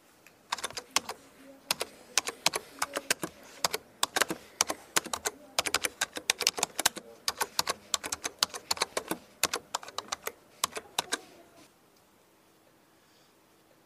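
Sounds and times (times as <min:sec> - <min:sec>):
typing on a computer keyboard: 0:00.5 - 0:11.3.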